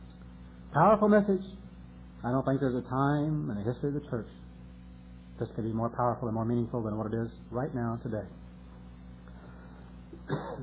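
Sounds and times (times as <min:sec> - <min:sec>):
steady low hum: 0:00.0 - 0:10.6
speech: 0:00.8 - 0:01.6, 0:02.2 - 0:04.4, 0:05.4 - 0:08.4, 0:10.3 - 0:10.6
person coughing after water went down the wrong pipe: 0:10.1 - 0:10.6.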